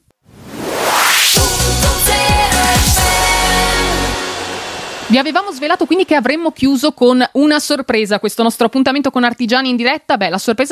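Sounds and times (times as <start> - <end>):
rising whoosh: 0.2 - 6.4
radio break music with punchy drum hits and sustained chords: 1.4 - 5.4
speech: 5.1 - 10.6.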